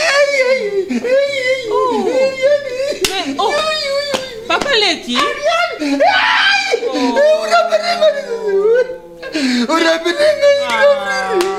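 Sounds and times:
laughter: 0.0 - 11.5
man crying: 0.0 - 11.5
speech: 4.9 - 6.4, 9.6 - 11.5.

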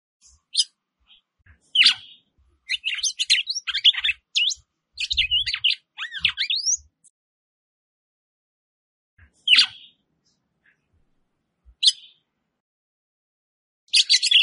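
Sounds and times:
Red-cowled Cardinal song: 0.2 - 7.1, 9.2 - 10.0, 11.8 - 12.2, 13.9 - 14.4.

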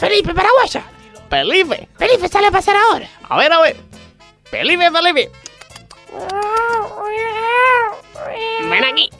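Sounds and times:
speech: 0.1 - 3.9, 4.5 - 5.5, 6.1 - 9.1
cat meowing: 6.1 - 9.1.

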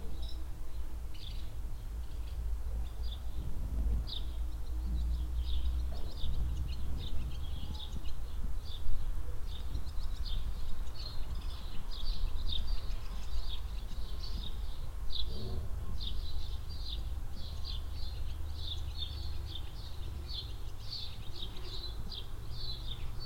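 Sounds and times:
mellow spring wind in a village barnyard: 0.0 - 23.2
swallows twittering while flying under a shed roof in a barnyard: 1.1 - 23.2.

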